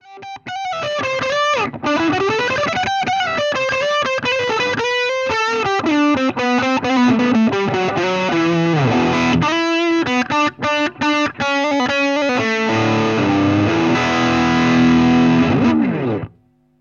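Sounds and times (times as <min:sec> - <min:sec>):
high gain guitar: 0:00.0 - 0:16.4.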